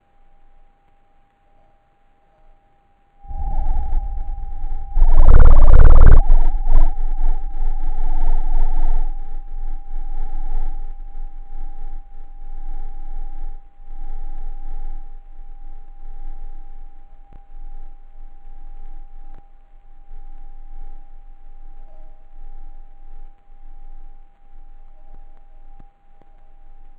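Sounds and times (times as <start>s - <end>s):
seismometer VCO signal tone from a DIY home seismometer station: 3.2s - 16.9s.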